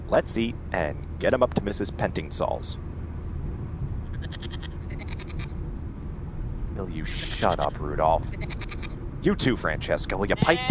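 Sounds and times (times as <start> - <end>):
low rumble: 0.0 - 10.6
speech: 0.1 - 2.8, 4.2 - 4.7, 6.8 - 8.6, 9.2 - 10.6
goats bleating: 4.1 - 5.5, 7.2 - 8.9, 10.2 - 10.6.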